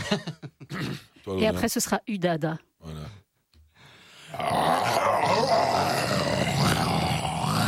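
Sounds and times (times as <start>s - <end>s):
speech: 0.1s - 0.4s, 1.3s - 2.7s
person imitating a lion's roar: 4.3s - 7.6s.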